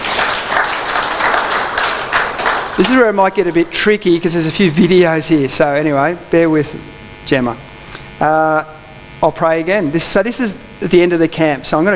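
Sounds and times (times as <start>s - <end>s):
audience applause: 0.0s - 3.2s
speech: 2.8s - 11.9s.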